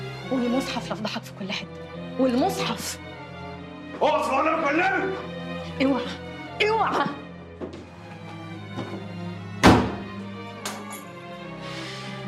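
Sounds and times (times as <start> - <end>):
speech: 0.3 - 3.1, 4.0 - 7.8
man's fist banging on a door: 9.6 - 10.1.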